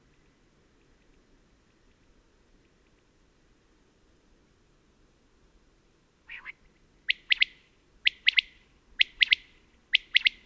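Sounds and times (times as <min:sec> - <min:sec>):
common quail singing at daybreak on the Col Bayard above Gap: 0:06.3 - 0:10.4.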